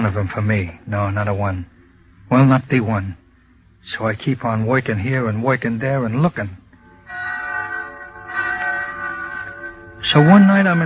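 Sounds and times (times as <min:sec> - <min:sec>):
speech: 0:00.0 - 0:03.2, 0:03.8 - 0:06.6, 0:10.0 - 0:10.8
bells ringing: 0:07.1 - 0:10.8.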